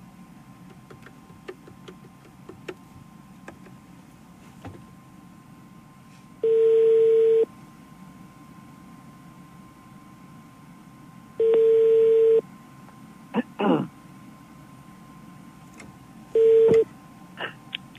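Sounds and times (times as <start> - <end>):
unanswered telephone call ringback tones: 6.4 - 7.5, 11.4 - 12.4, 16.4 - 16.8.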